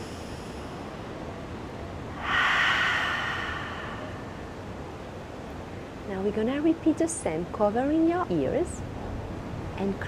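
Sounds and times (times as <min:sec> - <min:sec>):
long exhale during a breathing exercise: 0:02.1 - 0:04.8
speech: 0:06.2 - 0:08.9, 0:09.8 - 0:10.0.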